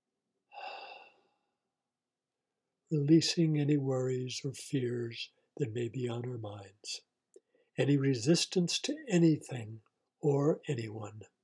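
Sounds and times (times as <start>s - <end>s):
slow exhale during guided breathing meditation: 0.5s - 1.3s
speech: 2.9s - 7.1s, 7.8s - 11.4s.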